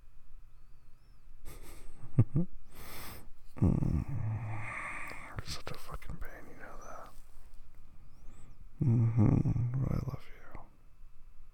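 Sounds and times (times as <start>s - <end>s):
speech: 2.4s - 2.6s, 3.6s - 4.2s, 5.5s - 7.2s, 8.8s - 10.2s
person exaggerated fake snoring: 3.6s - 5.3s, 8.8s - 10.1s.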